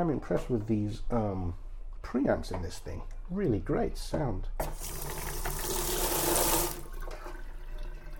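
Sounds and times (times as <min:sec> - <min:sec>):
speech: 0:00.0 - 0:05.2
water gushing into a large noisy sink: 0:04.6 - 0:08.1.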